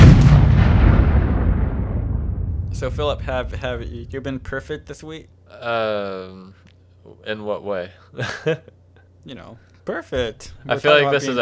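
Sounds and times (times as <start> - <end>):
bomb explosion sound effect: 0.0 - 5.2
speech: 2.8 - 11.4.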